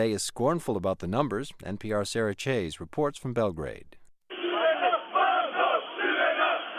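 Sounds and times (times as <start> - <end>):
speech: 0.0 - 4.0
large rally crowd chanting: 4.3 - 6.7.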